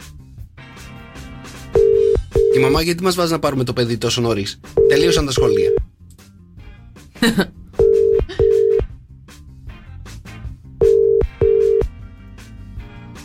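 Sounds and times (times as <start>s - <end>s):
rhythmic music: 0.0s - 13.2s
unanswered telephone call ringback tone: 1.8s - 2.8s, 4.8s - 5.8s, 7.8s - 8.8s, 10.8s - 11.9s
speech: 2.6s - 5.8s, 7.2s - 7.6s.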